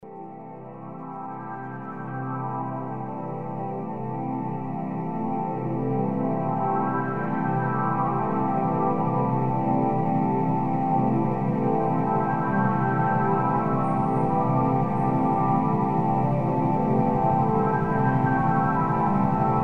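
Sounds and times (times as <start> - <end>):
whimsical ambient soundscape: 0.0 - 19.6.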